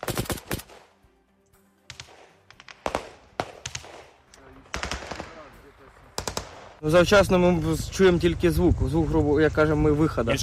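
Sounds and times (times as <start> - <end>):
gunfire bursts at a war front: 0.0 - 1.0, 1.9 - 6.8
man talking: 4.4 - 6.2, 6.8 - 10.4.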